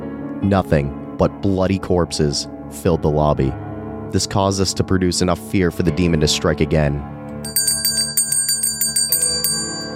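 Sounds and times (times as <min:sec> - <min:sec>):
speech: 0:00.4 - 0:07.2
bells ringing: 0:07.4 - 0:09.9.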